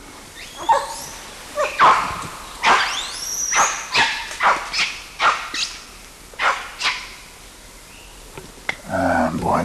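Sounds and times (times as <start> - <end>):
adult male monkey barking in short sharp bursts: 0.5 - 7.3.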